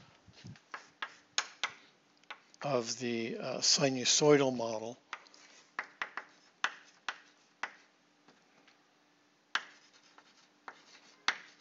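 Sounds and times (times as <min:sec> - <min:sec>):
handwriting on a surface during a lecture: 0:00.4 - 0:02.5, 0:05.1 - 0:07.9, 0:09.5 - 0:11.5
speech: 0:02.6 - 0:05.0.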